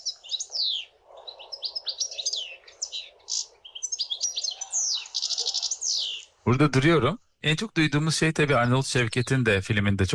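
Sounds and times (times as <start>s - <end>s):
European goldfinch singing: 0.0s - 6.4s
speech: 6.5s - 10.1s.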